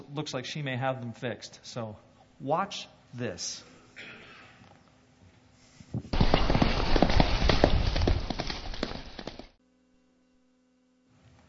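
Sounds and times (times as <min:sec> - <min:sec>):
speech: 0:00.2 - 0:04.1
horse hooves pounding as it jumps obstacles: 0:06.1 - 0:09.6.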